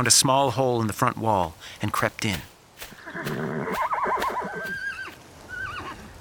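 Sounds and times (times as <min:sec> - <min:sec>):
speech: 0:00.0 - 0:03.8
horse whinnying in a stable: 0:03.0 - 0:06.1.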